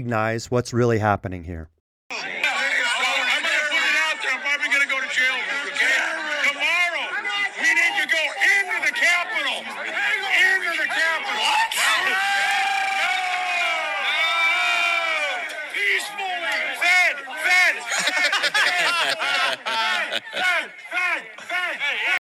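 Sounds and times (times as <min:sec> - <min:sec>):
speech: 0:00.0 - 0:02.4
laughter: 0:02.1 - 0:06.5, 0:17.5 - 0:22.2
large outdoor crowd shouting and chanting: 0:02.1 - 0:22.2.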